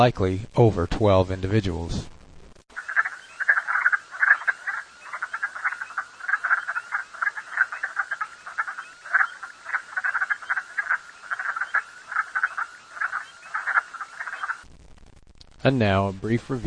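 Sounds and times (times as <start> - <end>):
speech: 0.0 - 2.1, 15.6 - 16.6
dense chorus of many frogs croaking: 2.7 - 14.6.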